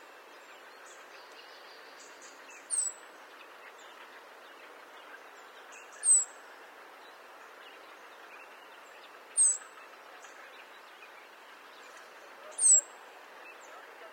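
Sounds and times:
low background hiss: 0.0s - 14.1s
European robin Erithacus rubecula thin high descending whistled calls: 2.4s - 3.0s, 5.7s - 6.4s, 9.4s - 9.7s, 12.4s - 13.8s.

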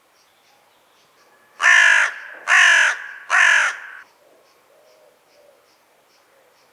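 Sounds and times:
carrion crow (Corvus corone) cawing: 1.6s - 4.1s.

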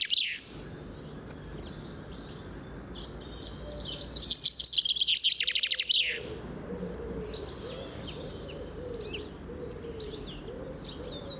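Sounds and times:
common chaffinch Fringilla coelebs calling: 0.0s - 11.3s.

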